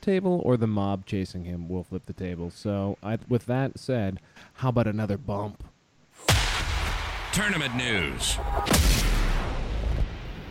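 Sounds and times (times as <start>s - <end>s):
speech: 0.0s - 6.4s, 7.4s - 9.0s
loud booming explosion with heavy low rumble: 6.2s - 10.4s.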